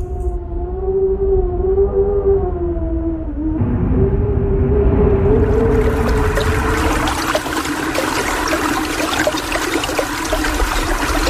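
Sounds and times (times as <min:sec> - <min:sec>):
wind howling: 0:00.0 - 0:11.2
broad rushing wash: 0:04.8 - 0:11.2.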